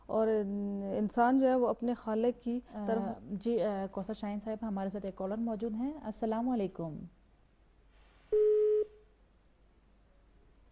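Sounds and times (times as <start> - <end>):
low hiss: 0.0 - 10.7
speech: 0.1 - 7.2
telephone busy tone after a caller disconnected: 8.4 - 9.0.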